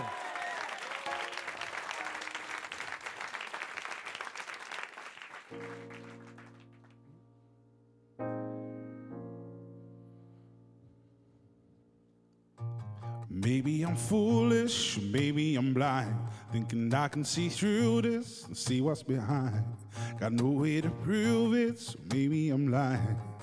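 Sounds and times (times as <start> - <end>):
studio audience applause welcoming a singer: 0.0 - 7.0
sustained piano chords of a slow song introduction: 5.5 - 12.8
speech: 13.5 - 23.3.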